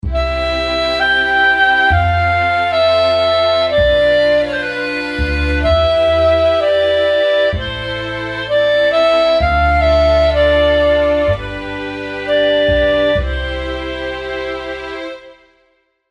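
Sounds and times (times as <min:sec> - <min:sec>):
bass: 0:00.0 - 0:15.6
clarinet: 0:00.0 - 0:15.7
strings: 0:00.0 - 0:15.7.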